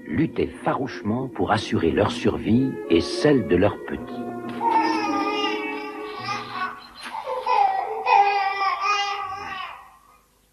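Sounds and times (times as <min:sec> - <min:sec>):
speech: 0:00.2 - 0:04.6
baby crying: 0:04.5 - 0:10.2.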